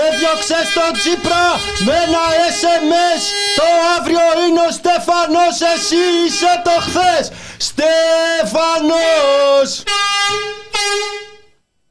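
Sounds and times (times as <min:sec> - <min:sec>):
blaring air horn blasts: 0:00.0 - 0:04.2, 0:05.3 - 0:07.7, 0:09.0 - 0:11.5
speech: 0:00.2 - 0:11.2.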